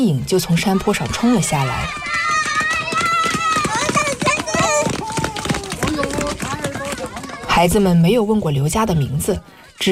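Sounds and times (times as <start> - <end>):
children's running feet down a hillside: 0.2 - 9.8
children shouting excitedly on a hillside in Guangxi China: 0.6 - 7.5.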